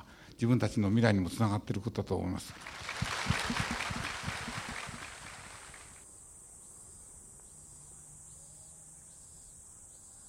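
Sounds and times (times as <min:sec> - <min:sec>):
speech: 0:00.4 - 0:03.7
cicadas singing outdoors in a park: 0:02.6 - 0:10.2.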